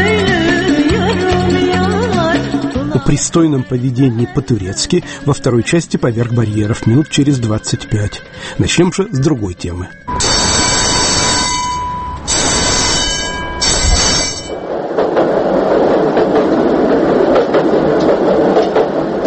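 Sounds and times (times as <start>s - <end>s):
tram rolling on rails with rumble and rhythmic clacks: 0.0s - 19.2s
speech: 3.0s - 10.3s
shrill metallic squeals of tram: 9.9s - 14.7s.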